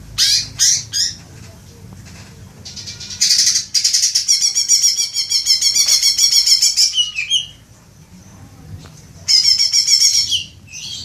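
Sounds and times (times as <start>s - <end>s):
leafbird singing vigorously with rasping and high notes: 0.0s - 1.3s, 2.6s - 7.6s, 9.3s - 11.0s.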